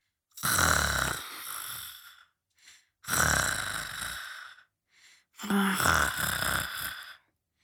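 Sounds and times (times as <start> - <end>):
snoring: 0.4 - 2.3, 3.0 - 4.7, 5.4 - 7.2
short quiet breaths: 1.2 - 3.1, 4.1 - 7.6.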